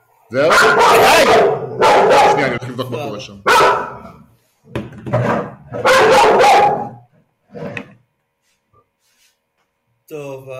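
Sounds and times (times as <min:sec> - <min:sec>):
speech: 0:00.3 - 0:01.6, 0:02.4 - 0:06.8
female dog having a tantrum barking loudly: 0:00.4 - 0:02.6, 0:03.5 - 0:04.2, 0:05.1 - 0:07.1.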